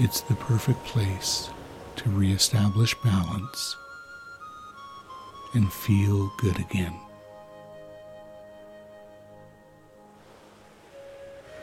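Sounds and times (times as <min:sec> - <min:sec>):
speech: 0:00.0 - 0:03.8, 0:05.5 - 0:07.0
surf breaking on a long beach: 0:00.0 - 0:05.5, 0:10.0 - 0:11.6.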